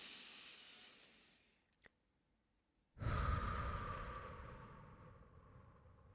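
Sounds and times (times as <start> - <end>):
person breathing deeply during a guided relaxation exercise: 0.0 - 1.4, 3.0 - 6.1.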